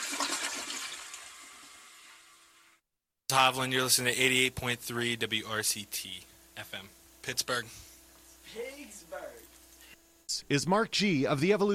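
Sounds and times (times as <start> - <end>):
toilet flushing: 0.0 - 2.8
speech: 3.3 - 7.9, 10.5 - 11.7.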